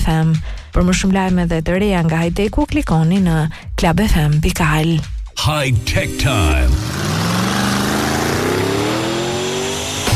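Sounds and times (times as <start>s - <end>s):
speech: 0.1s - 7.0s
car driving very fast with loud engine whine accelerating: 6.1s - 10.1s.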